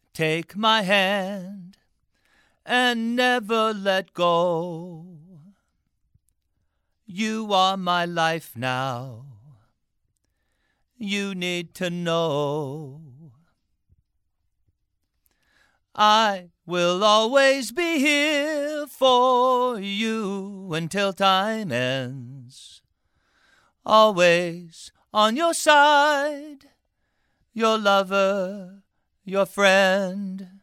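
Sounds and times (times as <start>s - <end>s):
male vocals: 0.0s - 1.8s, 2.6s - 5.6s, 7.0s - 9.7s, 11.0s - 13.5s, 15.9s - 22.8s, 23.8s - 26.8s, 27.5s - 30.6s.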